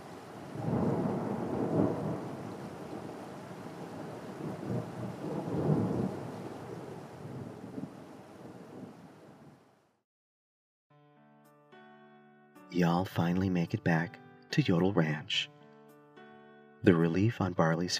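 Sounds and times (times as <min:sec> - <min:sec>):
deep rolls of thunder rumbling: 0:00.0 - 0:09.6
steady rain: 0:00.0 - 0:09.8
speech: 0:12.7 - 0:15.6, 0:16.8 - 0:17.9.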